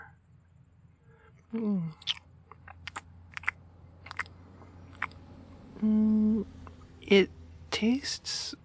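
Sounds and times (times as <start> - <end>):
person chewing food containing cheese: 1.3 - 5.2
speech: 1.5 - 2.2, 5.8 - 8.6
person murmuring: 5.8 - 6.5.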